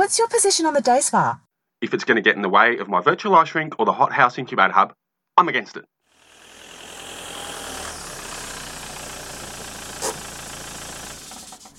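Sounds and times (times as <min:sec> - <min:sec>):
speech: 0:00.0 - 0:06.0
car engine idling while parking: 0:06.2 - 0:11.7.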